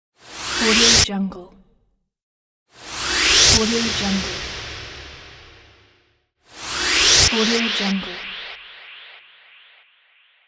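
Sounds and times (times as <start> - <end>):
short whoosh: 2.8 - 10.4.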